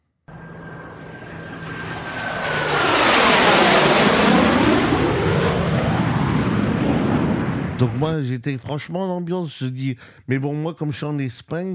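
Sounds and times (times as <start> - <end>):
airplane engine roaring on a flight from Spain to Iceland: 0.3 - 8.0
speech: 7.8 - 11.7.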